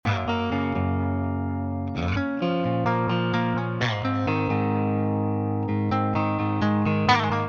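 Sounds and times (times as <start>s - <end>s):
guitar playing at 125 BPM in A flat major: 0.0s - 7.4s.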